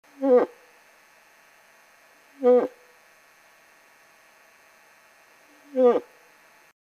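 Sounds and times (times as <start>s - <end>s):
old bull moose calling in love: 0.2s - 0.6s, 2.4s - 2.8s, 5.6s - 6.1s.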